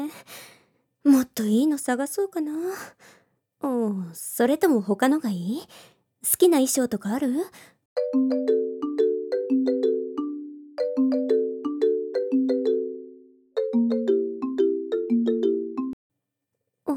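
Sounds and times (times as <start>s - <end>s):
speech: 1.0s - 8.6s
phone ringtone playing a bright melodic chime tune: 8.0s - 16.0s.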